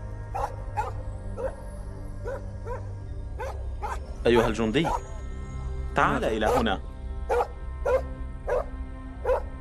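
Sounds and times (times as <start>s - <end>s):
dog barking and yipping: 0.4s - 1.6s, 2.2s - 2.8s, 3.4s - 5.0s, 7.3s - 9.4s
speech: 4.2s - 5.1s, 6.0s - 7.5s.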